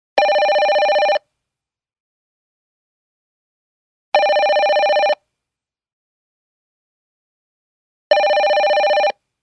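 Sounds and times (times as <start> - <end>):
office phone ringing: 0.2 - 1.2, 4.2 - 5.2, 8.1 - 9.2.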